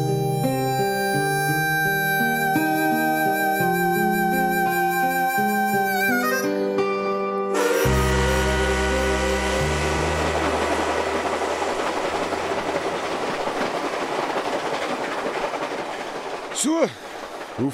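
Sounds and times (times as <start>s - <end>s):
train rolling on rails: 0.0s - 6.7s, 7.6s - 17.7s
brief wavering squeal: 0.0s - 6.8s, 7.6s - 13.3s.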